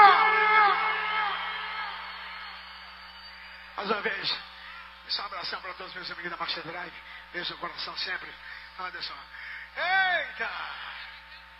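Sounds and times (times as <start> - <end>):
single voice giving a long loud whooping shout: 0.0 - 3.4
speech: 3.8 - 4.5, 5.1 - 10.9.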